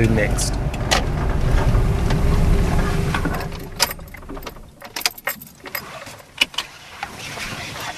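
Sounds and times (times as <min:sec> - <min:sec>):
low steady rumble of a car interior: 0:00.0 - 0:06.5
keys jangling and clattering: 0:03.3 - 0:06.3.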